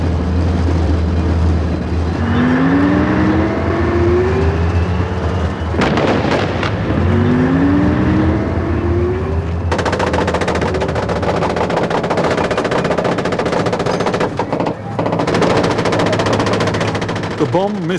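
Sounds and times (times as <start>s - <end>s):
low rumbling: 0.0s - 17.9s
soldiers' machine guns firing rapid bursts into almost empty streets: 3.0s - 8.6s, 9.4s - 17.9s.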